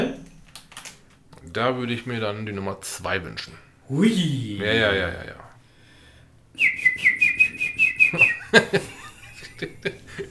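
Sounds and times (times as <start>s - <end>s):
scattered clicks: 0.2s - 1.4s
speech: 1.5s - 5.5s
whistled chirps imitating bird twittering: 6.6s - 9.4s
short chuckling bursts: 6.6s - 10.2s.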